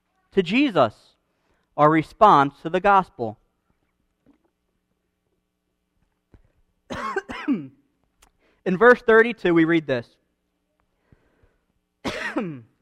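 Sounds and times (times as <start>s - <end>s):
speech: 0.4s - 1.1s, 1.8s - 3.4s, 8.7s - 10.2s, 12.4s - 12.7s
person coughing after a drink of water: 6.9s - 7.8s, 12.0s - 12.8s.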